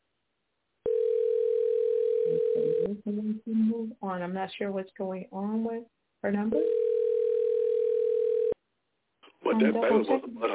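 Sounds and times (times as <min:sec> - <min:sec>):
telephone dial tone while dialing a number: 0:00.9 - 0:02.9, 0:06.6 - 0:08.6
speech: 0:02.9 - 0:06.8, 0:09.5 - 0:10.5.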